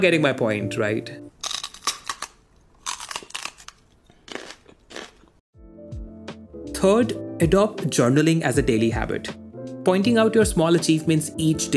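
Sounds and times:
speech: 0.0s - 1.3s, 6.8s - 11.7s
crunchy munching of french fries: 1.4s - 5.4s.

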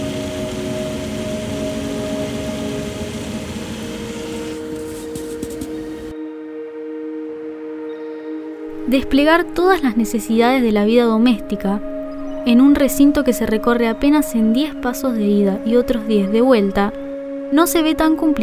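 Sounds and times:
computer cooling fans whirring with droning hum: 0.0s - 6.1s
steady tonal whine: 0.0s - 18.4s
speech: 8.9s - 18.4s.

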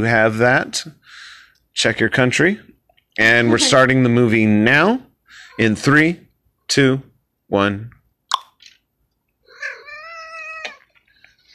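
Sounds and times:
speech: 0.0s - 8.0s
domestic cat calling and yowling: 9.5s - 11.0s.

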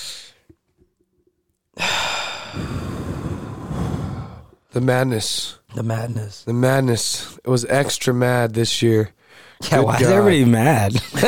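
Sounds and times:
deep breathy exhale: 1.8s - 4.6s
speech: 4.8s - 11.2s.

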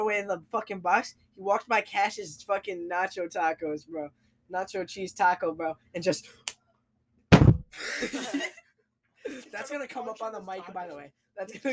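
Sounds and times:
speech: 0.0s - 6.5s, 7.8s - 8.6s, 9.3s - 11.7s
hand slamming on a desk: 7.3s - 7.7s.

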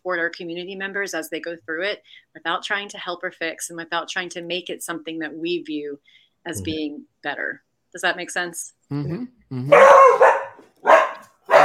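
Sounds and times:
speech: 0.0s - 10.3s
dog barking excitedly: 9.7s - 11.6s.

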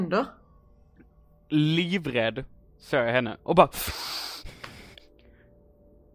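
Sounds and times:
speech: 0.0s - 0.4s, 1.5s - 4.1s
heavy panicked breathing acted out by a voice: 3.8s - 5.4s.

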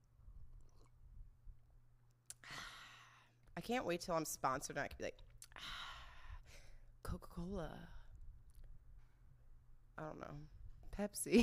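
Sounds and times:
low hum: 0.0s - 11.4s
person sipping a drink: 0.4s - 1.3s
airy slurp: 0.6s - 1.2s
speech: 3.6s - 5.8s, 7.1s - 8.0s, 10.0s - 11.4s.

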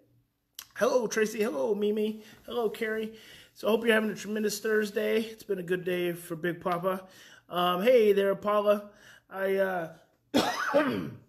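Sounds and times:
speech: 0.8s - 11.2s
raspy throaty coughs: 10.3s - 11.2s.

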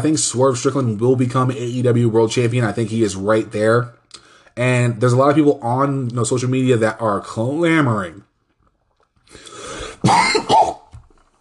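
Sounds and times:
speech: 0.0s - 4.0s, 4.6s - 8.3s
man clearing throat: 10.0s - 10.9s
man coughing with mucus: 10.0s - 10.9s.

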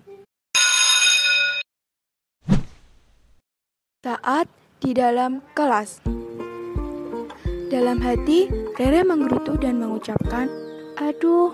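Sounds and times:
school bell ringing: 0.6s - 1.7s
speech: 4.0s - 6.1s, 7.7s - 11.5s.

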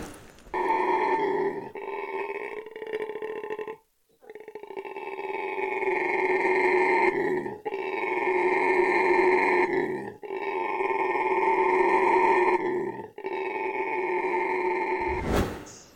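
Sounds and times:
howler monkey roaring: 0.5s - 15.2s.

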